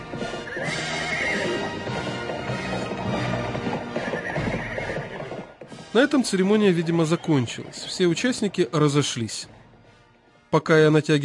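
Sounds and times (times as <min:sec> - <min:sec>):
horse whinnying: 0:00.0 - 0:05.6
horse hooves galloping: 0:00.0 - 0:09.5
speech: 0:06.0 - 0:09.6, 0:10.5 - 0:11.2.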